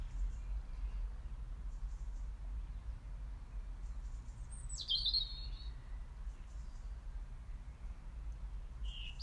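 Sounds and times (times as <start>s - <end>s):
birds singing in the evening: 0.0s - 7.9s, 8.8s - 9.2s
steady low outdoor rumble: 0.0s - 9.2s.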